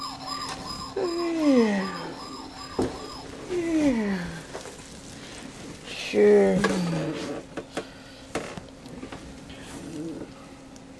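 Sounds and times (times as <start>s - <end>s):
toy vehicle electronic siren: 0.0s - 4.1s
speech: 6.1s - 6.7s.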